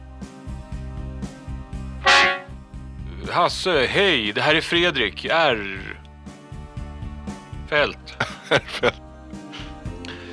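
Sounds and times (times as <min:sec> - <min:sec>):
short accordion sting as answering machine tone: 0:02.0 - 0:02.6
speech: 0:03.4 - 0:05.9, 0:07.7 - 0:09.0
laughter: 0:08.1 - 0:09.0.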